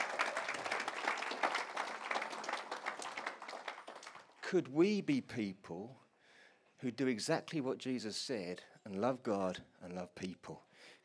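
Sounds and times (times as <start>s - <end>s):
audience applause: 0.0s - 4.4s
speech: 4.5s - 6.0s, 6.8s - 11.0s.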